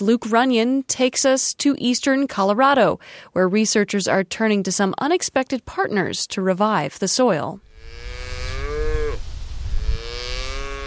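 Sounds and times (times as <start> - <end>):
speech: 0.0 - 7.7
cow mooing on grazing land in eastern Colorado: 7.7 - 9.2, 9.8 - 10.8.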